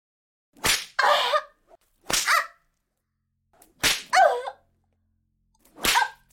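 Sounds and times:
sharp whip lashes striking a person's buttocks: 0.6s - 1.0s, 2.0s - 2.5s, 3.6s - 4.2s, 5.6s - 6.2s.

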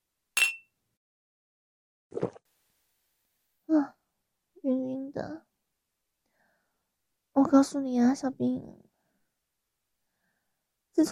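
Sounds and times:
glasses clinking in a toast during a meal: 0.4s - 0.6s
speech: 7.5s - 8.8s, 11.0s - 11.1s.

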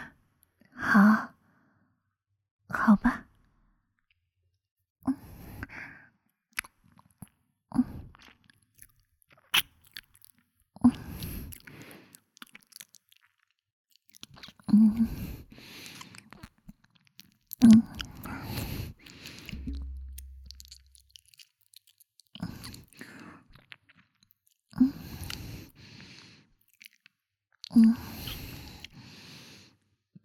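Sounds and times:
speech: 1.0s - 1.3s
wet chewing of lotus seed soup fed mouth to mouth: 8.1s - 29.0s.

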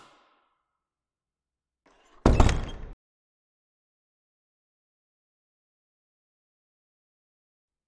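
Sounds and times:
door opening with mechanical clunks and rattles: 2.2s - 2.9s.

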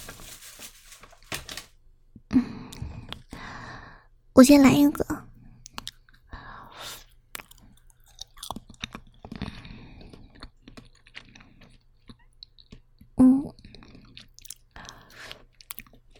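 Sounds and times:
speech: 4.4s - 5.0s
chewing and crunching mouth sounds eating slightly fatty grilled lamb skewers: 5.4s - 16.1s.

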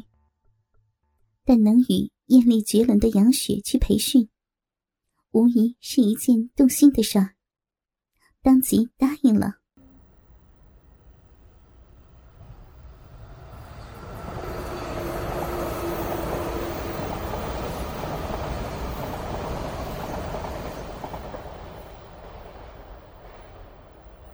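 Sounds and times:
speech: 1.5s - 4.3s, 5.3s - 7.4s, 8.4s - 9.6s
passenger train rumbling along the rails: 9.8s - 24.3s.

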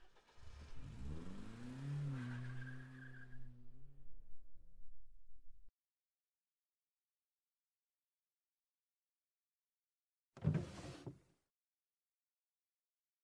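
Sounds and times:
car engine revving and driving off: 0.0s - 4.9s.

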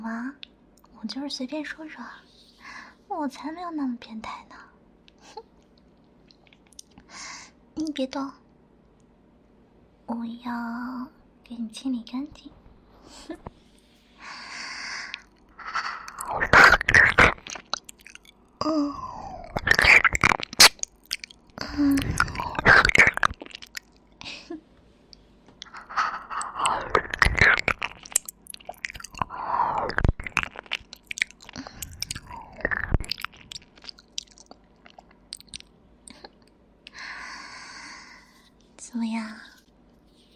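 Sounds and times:
speech: 0.3s - 2.4s, 3.1s - 5.5s, 7.2s - 8.4s, 10.1s - 13.5s
person chewing and crunching newly bought candy: 15.0s - 18.6s, 19.3s - 24.2s, 25.6s - 37.0s
wet mouth sounds: 15.1s - 24.1s, 25.6s - 36.5s.

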